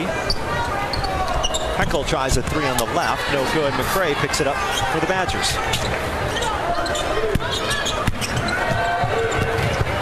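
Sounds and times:
crowd noise at a women's college basketball game: 0.0 - 9.9
speech: 1.8 - 9.3
basketball dribbled on the court during a women's college game: 7.2 - 9.9.

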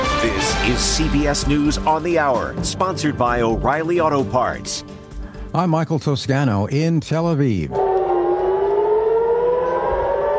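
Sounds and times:
speech: 0.3 - 7.9
civil defense air raid sirens wailing during missile attacks in Israel: 7.7 - 10.3.

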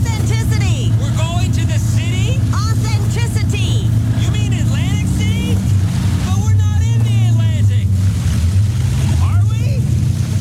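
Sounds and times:
people talking: 0.0 - 7.9, 9.0 - 9.9
motorboat engine droning on the water: 0.0 - 10.3.

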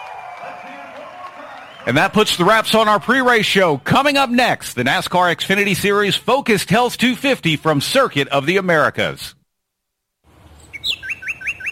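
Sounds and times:
speech: 1.8 - 9.4
small birds chirping in a garden: 10.4 - 11.7.

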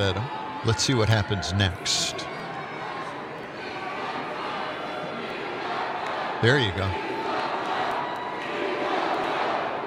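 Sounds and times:
speech: 0.0 - 2.3, 6.4 - 7.0
large crowd yelling a chant: 2.1 - 9.8.

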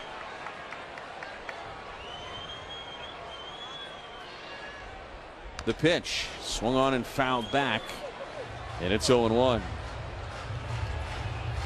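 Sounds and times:
baseball stadium crowd cheering and shouting: 0.0 - 11.6
faint high whistle: 2.0 - 4.8
speech: 5.6 - 8.0, 8.8 - 9.8.

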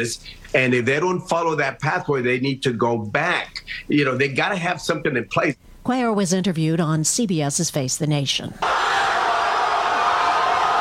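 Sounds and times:
speech: 0.0 - 9.2
soccer fans in Argentina cheering after a World Cup final win: 8.6 - 10.7.

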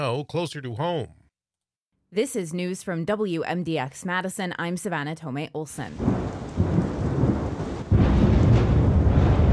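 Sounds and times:
speech: 0.0 - 1.2, 2.1 - 6.4
heavy rumbling thunder in a night storm in southern Wisconsin: 6.0 - 9.5
rain hissing: 6.0 - 9.5.

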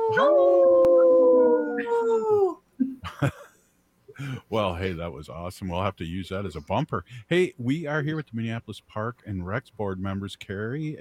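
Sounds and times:
person imitating a wolf howl: 0.0 - 2.6
speech: 0.1 - 0.9, 4.2 - 10.9.

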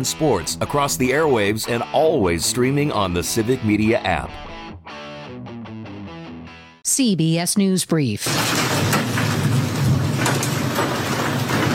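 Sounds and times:
speech: 0.0 - 4.5, 6.9 - 8.8
hail falling: 8.2 - 11.7.

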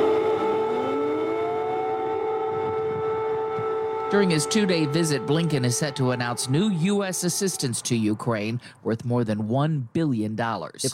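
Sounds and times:
air raid siren wailing in Kyiv: 0.0 - 8.7
speech: 4.1 - 10.9.

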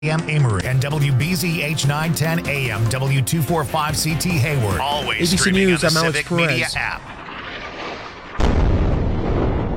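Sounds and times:
speech: 0.0 - 7.2
huge explosion in Gaza: 6.7 - 9.7.

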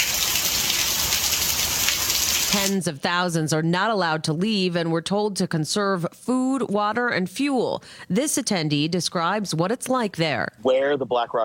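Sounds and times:
heavy rain on the dry lake bed of the Nevada desert: 0.0 - 2.8
speech: 2.5 - 11.4.

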